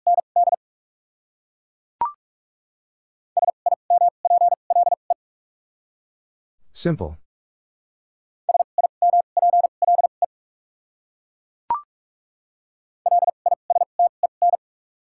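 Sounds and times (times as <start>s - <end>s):
rapid Morse code beeps with double character spacing: 0.0s - 0.6s, 3.4s - 5.0s, 8.5s - 10.1s, 13.1s - 14.6s
speech: 6.8s - 7.2s.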